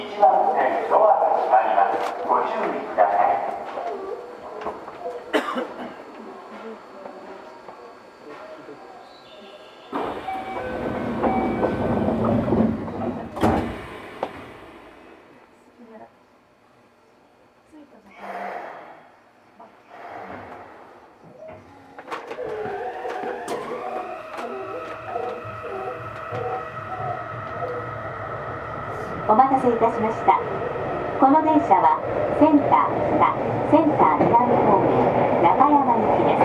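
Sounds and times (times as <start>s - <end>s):
low rumble of a slowing subway train: 0.0s - 16.0s, 19.9s - 36.4s
voices inside a subway train: 0.0s - 16.2s, 17.0s - 36.4s
linear motor whine of a subway train pulling away: 9.4s - 15.4s, 19.9s - 36.3s.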